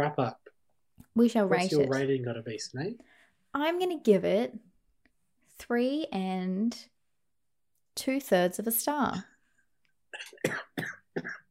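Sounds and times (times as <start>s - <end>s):
speech: 0.0s - 0.4s, 1.2s - 4.7s, 5.6s - 6.9s, 8.0s - 9.3s, 10.1s - 11.4s
person having a coughing fit: 1.7s - 2.1s, 10.2s - 11.5s.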